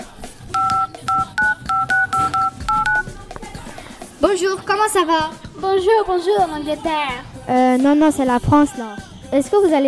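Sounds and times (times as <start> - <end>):
phone number dialed with DTMF touch-tone beeps: 0.5 - 3.1
speech: 4.3 - 9.8.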